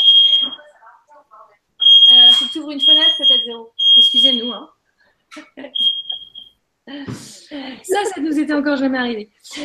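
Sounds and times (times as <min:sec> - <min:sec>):
smoke detector alarm beeping: 0:00.0 - 0:00.7, 0:01.8 - 0:04.7, 0:05.7 - 0:06.6
speech: 0:02.6 - 0:06.0, 0:06.9 - 0:09.6.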